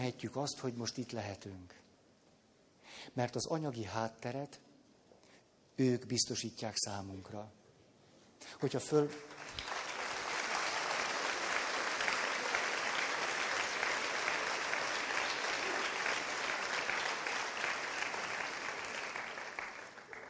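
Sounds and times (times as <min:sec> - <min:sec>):
speech: 0:00.0 - 0:01.9, 0:03.0 - 0:04.7, 0:05.8 - 0:07.6, 0:08.4 - 0:09.6
audience applause: 0:09.3 - 0:20.2.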